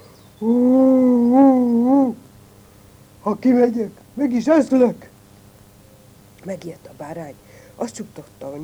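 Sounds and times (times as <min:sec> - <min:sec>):
speech: 0:00.4 - 0:00.7, 0:03.3 - 0:05.1, 0:06.4 - 0:08.6
person imitating a wolf with a low wavering howl: 0:00.4 - 0:02.2.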